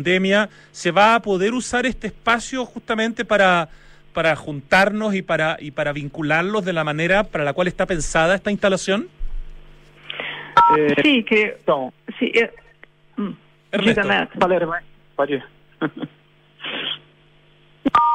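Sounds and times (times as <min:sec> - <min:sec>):
speech: 0:00.0 - 0:09.2, 0:10.6 - 0:12.6, 0:13.2 - 0:17.0
electronic beeps from phone keypad buttons being pressed: 0:10.6 - 0:10.8.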